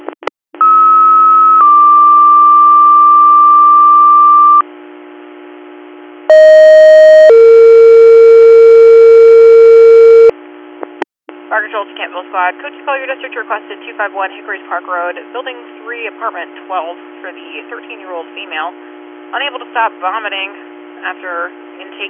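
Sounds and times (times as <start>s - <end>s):
fire dispatch electronic paging tones: 0.6s - 4.6s, 6.3s - 10.3s
speech: 12.2s - 22.0s.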